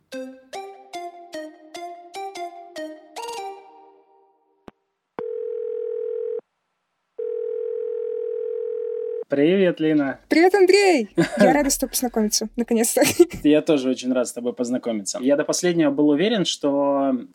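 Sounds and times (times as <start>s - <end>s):
telephone dial tone while placing a call: 5.2s - 6.4s, 7.2s - 9.2s
speech: 9.3s - 17.3s
laughter: 11.2s - 12.2s, 13.0s - 13.5s.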